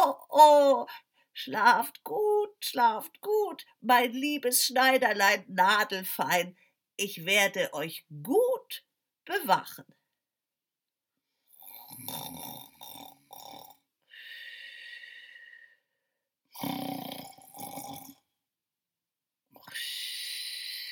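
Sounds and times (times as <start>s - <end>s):
speech: 0.4s - 10.0s, 12.0s - 12.7s, 16.6s - 16.9s
loud snoring: 11.5s - 13.8s, 16.5s - 18.2s.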